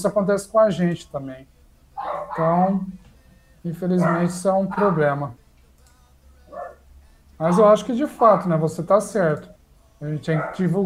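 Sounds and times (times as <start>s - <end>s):
speech: 0.0s - 3.0s, 3.6s - 5.4s, 7.4s - 10.8s
low steady hum: 0.0s - 10.8s
small dog barking: 2.0s - 2.5s, 4.0s - 5.0s, 7.5s - 8.5s, 10.3s - 10.7s.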